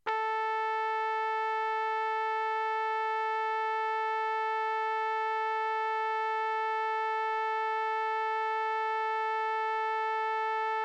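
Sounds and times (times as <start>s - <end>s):
trumpet: 0.0s - 10.8s.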